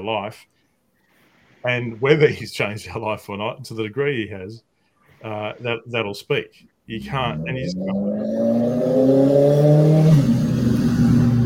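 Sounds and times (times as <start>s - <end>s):
speech: 0.0s - 0.6s, 1.6s - 10.4s
loud car engine revving and passing by: 7.0s - 11.4s.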